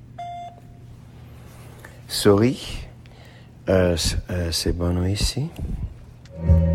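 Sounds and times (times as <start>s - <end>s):
voicemail beep: 0.2s - 0.6s
speech: 2.1s - 2.8s, 3.7s - 6.6s.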